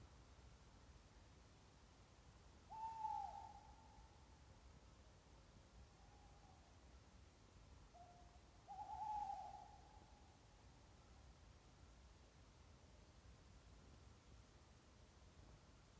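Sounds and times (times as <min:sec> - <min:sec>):
quiet hiss: 0:00.0 - 0:15.9
tawny owl hooting in a castle park: 0:02.7 - 0:04.0, 0:08.0 - 0:10.0.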